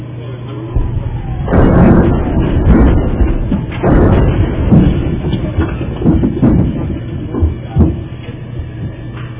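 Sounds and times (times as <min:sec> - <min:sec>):
rocket attacks: 0:00.7 - 0:08.1.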